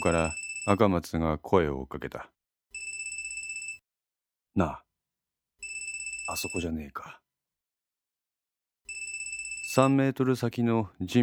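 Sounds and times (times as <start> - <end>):
phone ringing with a high-pitched electronic tone: 0.0 - 0.8, 2.8 - 3.8, 5.6 - 6.7, 8.9 - 10.0
speech: 0.0 - 2.4, 4.6 - 4.8, 6.3 - 7.2, 9.8 - 11.2.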